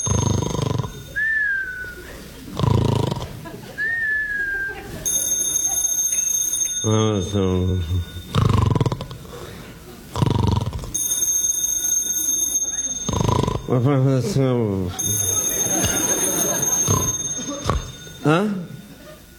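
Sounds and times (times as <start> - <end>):
electronic telephone ringing in shrill bursts: 0.0 - 1.2, 5.0 - 9.5, 10.9 - 19.3
laughter: 1.0 - 5.9, 13.7 - 19.3
speech: 6.9 - 8.2, 13.7 - 15.3.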